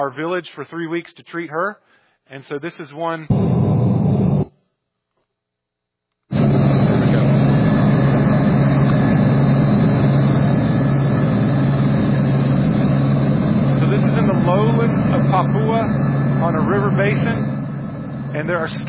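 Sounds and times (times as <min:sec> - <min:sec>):
speech: 0:00.0 - 0:04.2, 0:18.6 - 0:18.8
helicopter landing in a village, engine roaring: 0:06.3 - 0:18.8.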